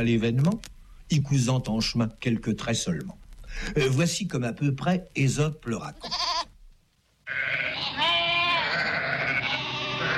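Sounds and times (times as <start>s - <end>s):
speech: 0.0s - 6.2s
sheep bleating: 6.0s - 6.5s, 7.2s - 10.1s
faint murmur of other animals: 7.2s - 10.1s.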